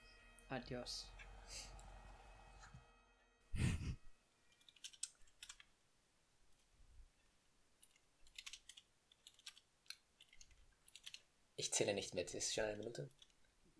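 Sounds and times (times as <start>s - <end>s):
speech: 0.5s - 1.7s, 11.7s - 13.3s
computer keyboard typing: 4.5s - 5.8s, 7.8s - 13.7s.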